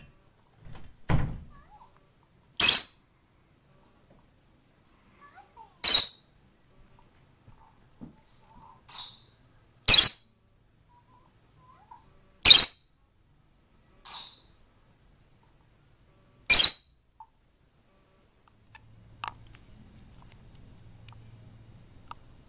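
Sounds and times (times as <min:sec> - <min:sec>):
female lovebird squeaking: 0:02.6 - 0:03.0, 0:05.8 - 0:06.2, 0:09.9 - 0:10.3, 0:12.4 - 0:12.8, 0:16.5 - 0:16.9
female lovebird chirping: 0:02.6 - 0:03.1, 0:05.8 - 0:06.3, 0:08.3 - 0:10.4, 0:12.4 - 0:12.9, 0:14.0 - 0:14.6, 0:16.5 - 0:17.0.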